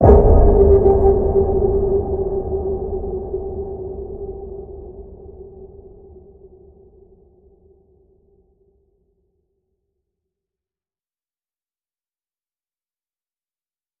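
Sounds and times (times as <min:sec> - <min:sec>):
deep waters ping in G: 0:00.0 - 0:05.8.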